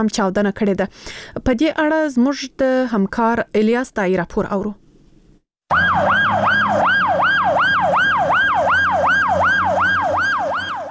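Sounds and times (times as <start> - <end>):
speech: 0.0 - 4.8
ambulance siren outside an emergency hospital: 5.7 - 10.8.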